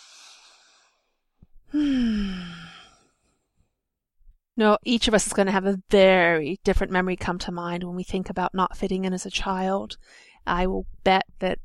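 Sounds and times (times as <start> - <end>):
deep breath with long voiced sighing exhale during a guided exercise: 0.0 - 3.4
speech: 1.7 - 2.4, 4.6 - 11.6.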